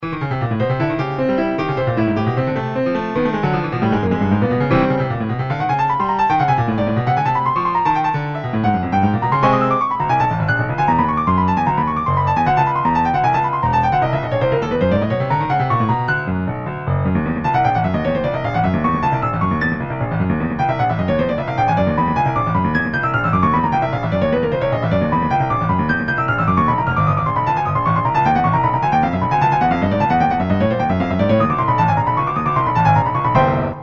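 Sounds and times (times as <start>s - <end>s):
piano prelude: 0.0s - 33.8s.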